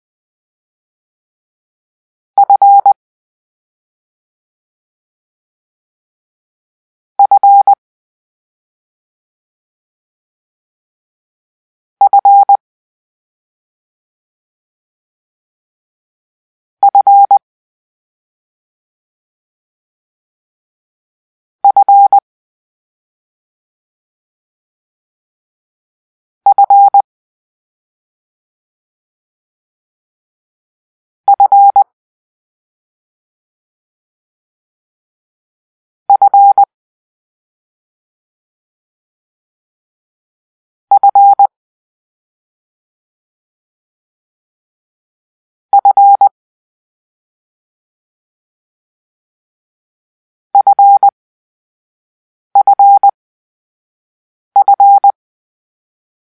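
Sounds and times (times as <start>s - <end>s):
morse code for the letter F: 2.4s - 3.0s, 7.2s - 7.8s, 12.0s - 12.6s, 16.8s - 17.4s, 21.6s - 22.2s, 26.5s - 27.0s, 31.3s - 31.8s, 36.1s - 36.7s, 41.0s - 41.5s, 45.7s - 46.3s, 50.6s - 51.1s, 52.6s - 53.1s, 54.6s - 55.2s.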